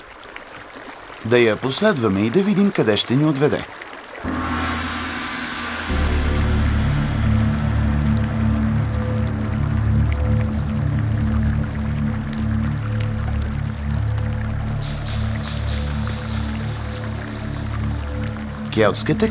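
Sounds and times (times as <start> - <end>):
water trickling and flowing in a cave behind a mountain waterfall: 0.0 - 19.2
speech: 1.2 - 4.4, 18.8 - 19.2
brighter rushing hiss: 4.2 - 12.8, 14.4 - 18.8
deep constant rumble: 4.2 - 19.2.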